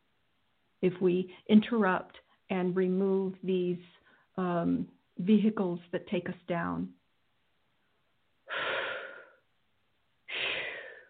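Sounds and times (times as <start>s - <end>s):
speech: 0.8s - 7.0s
heavy breathing with loud breathy exhales: 8.5s - 9.5s, 10.3s - 11.0s.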